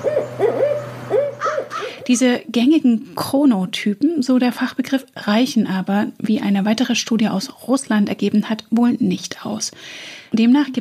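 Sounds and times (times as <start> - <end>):
owl hooting: 0.0 - 2.2
speech: 2.1 - 10.7.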